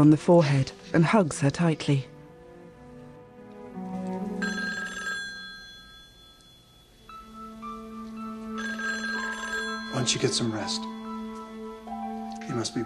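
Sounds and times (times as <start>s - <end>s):
speech: 0.0s - 2.1s, 10.0s - 11.0s, 12.5s - 12.8s
telephone ringing with bright electronic tones: 4.2s - 12.8s.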